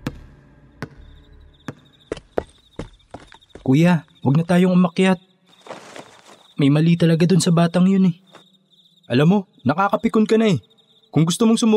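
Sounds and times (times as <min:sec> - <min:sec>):
faint high insect-like chirp: 0:00.2 - 0:11.7
ball bouncing on a hard floor: 0:01.7 - 0:03.4
speech: 0:03.7 - 0:05.3, 0:06.6 - 0:08.2, 0:09.1 - 0:11.7.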